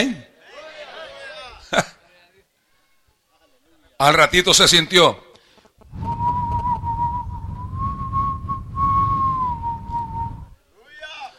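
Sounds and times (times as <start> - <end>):
speech: 4.0 - 5.3
soft sustained whistle imitating a gentle breeze: 5.9 - 10.6.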